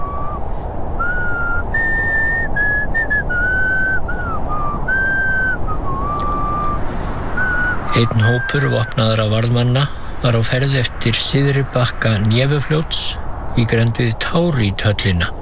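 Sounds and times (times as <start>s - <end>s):
person whistling a broken rendition of a Russian folk tune on winter streets: 0.0s - 6.8s, 7.4s - 9.0s
steady hiss: 0.0s - 15.4s
speech: 7.9s - 15.4s.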